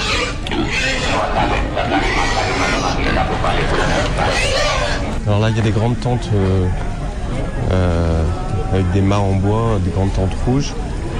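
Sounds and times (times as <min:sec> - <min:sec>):
tethered pigs grunting and snorting in a road: 0:00.0 - 0:05.2
loud hubbub of people talking at a village funeral: 0:00.0 - 0:11.1
speech: 0:05.3 - 0:06.9, 0:07.7 - 0:10.9.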